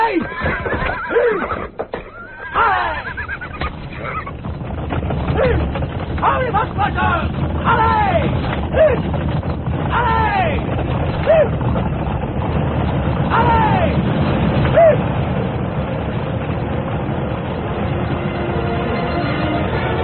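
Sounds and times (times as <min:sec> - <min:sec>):
bolting horses neighing and whinnying: 0:00.0 - 0:12.3, 0:13.1 - 0:15.2
constant rumbling busy background: 0:00.0 - 0:20.0.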